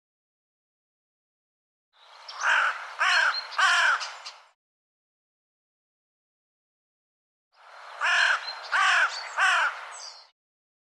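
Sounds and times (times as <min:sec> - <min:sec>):
bird giving harsh caw-like calls: 0:02.3 - 0:04.4, 0:08.0 - 0:10.1.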